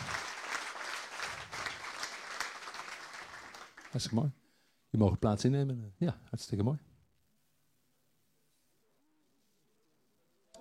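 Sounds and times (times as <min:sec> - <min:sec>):
audience applauding: 0:00.0 - 0:04.3
speech: 0:03.9 - 0:06.9.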